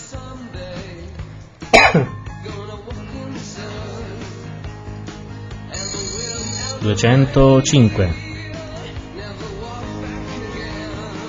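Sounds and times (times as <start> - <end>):
single harsh cough: 1.8 - 2.2
speech: 1.9 - 2.2, 6.8 - 8.2.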